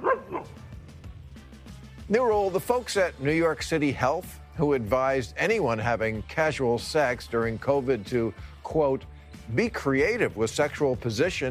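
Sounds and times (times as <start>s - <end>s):
dog barking: 0.0s - 0.6s
speech: 2.1s - 11.4s.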